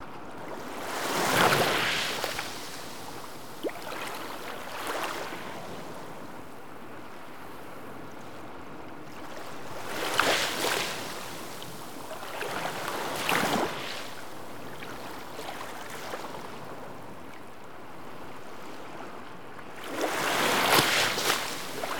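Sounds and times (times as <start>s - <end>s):
motorboat on the Mediterranean Sea: 0.0s - 21.9s
light waves on a small Mediterranean beach: 0.1s - 21.9s.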